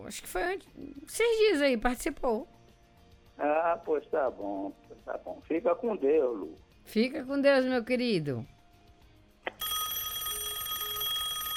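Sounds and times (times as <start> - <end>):
speech: 0.1 - 2.6, 3.4 - 8.5
telephone ringing with an incoming call: 9.6 - 11.5.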